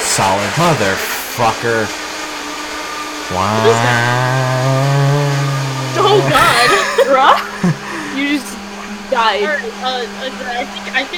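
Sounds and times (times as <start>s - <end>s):
voices: 0.0s - 1.9s, 3.3s - 11.1s
vacuum cleaner running: 0.0s - 11.1s
speech: 0.2s - 2.0s, 3.3s - 4.9s, 6.1s - 11.1s
laughter: 5.4s - 8.4s.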